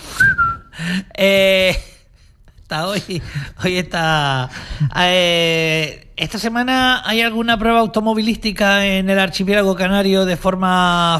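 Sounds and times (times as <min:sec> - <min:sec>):
short high whistled note: 0:00.0 - 0:00.8
speech: 0:00.8 - 0:01.9, 0:02.7 - 0:11.1.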